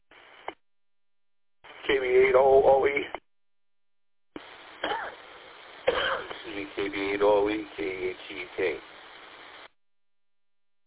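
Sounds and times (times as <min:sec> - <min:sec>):
radio static: 0:00.1 - 0:00.6, 0:01.6 - 0:03.2, 0:04.4 - 0:09.7
speech: 0:01.9 - 0:03.2, 0:06.8 - 0:08.9
person coughing through a radio channel: 0:04.8 - 0:05.2, 0:05.9 - 0:06.4.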